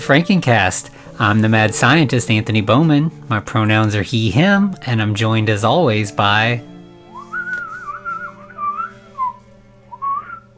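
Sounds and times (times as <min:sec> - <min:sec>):
speech: 0:00.1 - 0:06.7
person whistling a short wavering melody: 0:07.0 - 0:10.5.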